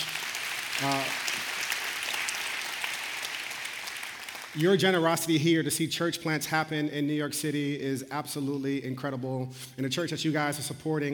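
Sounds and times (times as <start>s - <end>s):
church audience clapping: 0.0s - 5.0s
speech: 0.8s - 1.2s, 4.6s - 11.1s.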